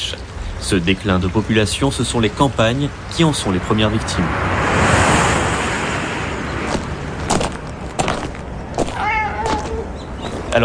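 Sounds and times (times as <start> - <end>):
steady rush of outdoor noise: 0.0 - 10.6
speech: 0.1 - 4.7
stray cat meowing: 8.9 - 10.0.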